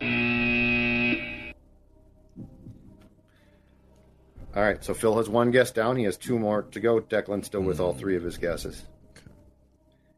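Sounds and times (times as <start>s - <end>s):
game show wrong-answer buzzer: 0.0s - 1.6s
speech: 4.6s - 8.9s.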